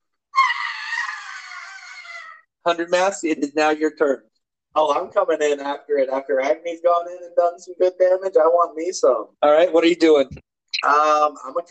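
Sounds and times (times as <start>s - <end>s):
person imitating the screech of a bat recoiling after biting armor: 0.3s - 2.5s
speech: 2.6s - 11.6s.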